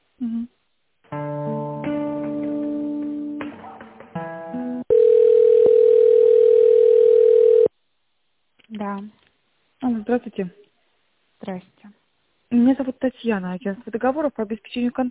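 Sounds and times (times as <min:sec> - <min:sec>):
telephone tones while a call is transferred: 0:04.9 - 0:07.7
speech: 0:10.1 - 0:10.6, 0:11.5 - 0:11.7, 0:12.6 - 0:15.0.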